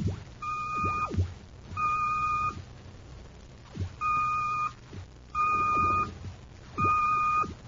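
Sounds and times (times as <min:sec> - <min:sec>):
coded radio signal of long electronic dashes: 0:00.0 - 0:02.6, 0:03.8 - 0:04.8, 0:05.4 - 0:06.2, 0:06.8 - 0:07.6
faint crackling hiss: 0:00.0 - 0:07.6.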